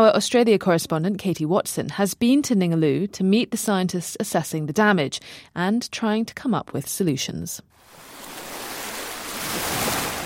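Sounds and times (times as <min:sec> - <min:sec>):
speech: 0:00.0 - 0:08.0
sea waves washing onto a white-sand beach beside a coral reef: 0:07.8 - 0:10.2.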